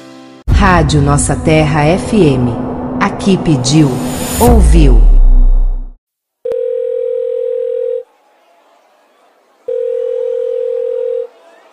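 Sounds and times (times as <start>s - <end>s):
speech: 0.6s - 5.1s
telephone ringing with electronic tone bursts: 6.5s - 8.1s, 9.6s - 11.4s.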